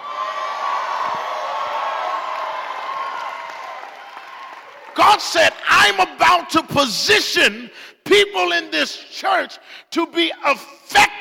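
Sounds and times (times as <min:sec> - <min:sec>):
whoops from a church audience: 0:00.0 - 0:05.0
large church audience yelling and cheering: 0:00.0 - 0:06.2
speech: 0:05.0 - 0:11.1.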